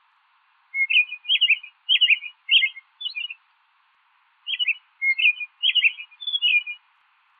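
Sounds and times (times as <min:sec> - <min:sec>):
American robin singing clear warbled caroling phrases: 0:00.7 - 0:03.6, 0:04.4 - 0:06.9.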